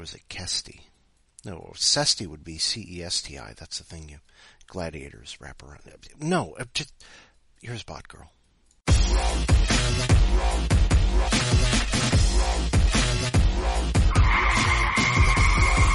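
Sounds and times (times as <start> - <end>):
speech: 0.0 - 8.4, 9.0 - 15.3
car skidding to a sudden halt with tires screeching: 14.0 - 15.9.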